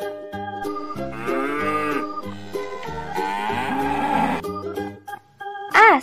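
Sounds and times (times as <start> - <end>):
steady musical accompaniment: 0.0 - 5.2
cow mooing: 0.6 - 4.4.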